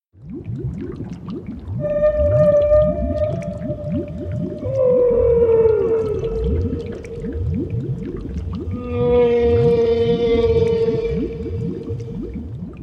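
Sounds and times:
woman's voice imitating a whale call: 1.8 - 7.5, 8.6 - 12.2
steady low pulsing rumble: 1.8 - 12.8.

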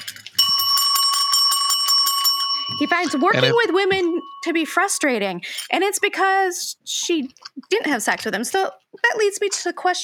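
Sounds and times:
bell ringing: 0.4 - 5.4
speech: 2.8 - 10.0.

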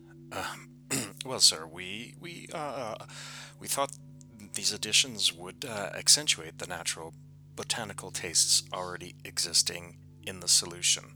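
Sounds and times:
man clearing his throat: 0.3 - 1.4
speech: 1.2 - 4.0, 4.6 - 11.1.

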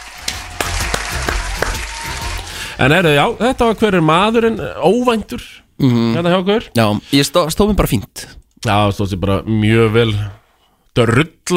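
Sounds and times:
hand clapping: 0.0 - 2.5
noise: 2.4 - 11.5
speech: 2.8 - 10.4, 11.0 - 11.5.

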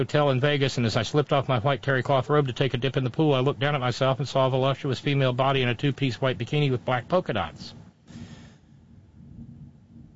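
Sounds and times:
speech: 0.0 - 8.2
thunder rumbling: 8.8 - 10.1.

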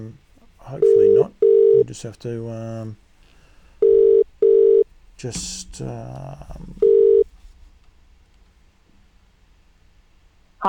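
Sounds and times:
speech: 0.0 - 3.0, 5.2 - 6.8
unanswered outgoing telephone call ringback tones: 0.8 - 1.8, 3.8 - 4.8, 6.8 - 7.2.

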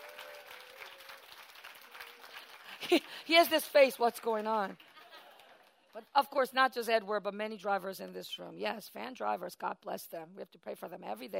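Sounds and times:
room full of people applauding: 0.0 - 3.3
speech: 2.9 - 4.9, 6.0 - 11.3.

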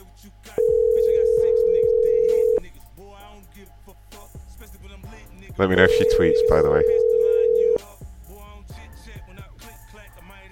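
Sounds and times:
telephone ring tone over a phone line: 0.6 - 2.6, 5.7 - 7.8
speech: 5.6 - 7.0.

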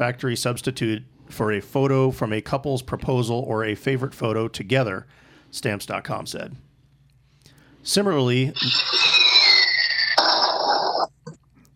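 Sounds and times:
speech: 0.0 - 6.7, 7.8 - 9.0
shrill, slightly falling whistle of a weak bomb effect: 8.6 - 10.7.

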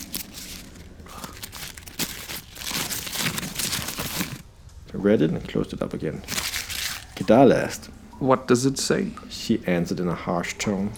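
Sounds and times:
paper scroll being unrolled: 0.0 - 4.4, 6.3 - 7.3
speech: 4.9 - 6.5, 7.3 - 10.9.

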